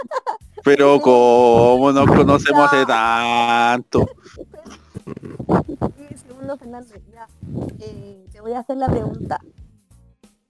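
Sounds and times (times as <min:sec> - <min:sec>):
speech: 0:00.0 - 0:04.5, 0:06.5 - 0:09.6
voices talking and laughing: 0:00.0 - 0:08.2, 0:08.8 - 0:09.5
heavy breathing with snorting and huffing into the microphone: 0:04.0 - 0:06.6, 0:07.3 - 0:08.2.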